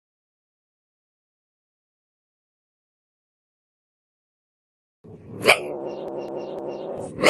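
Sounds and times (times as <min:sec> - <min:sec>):
wildcat yowl and droning moan: 0:05.3 - 0:07.2.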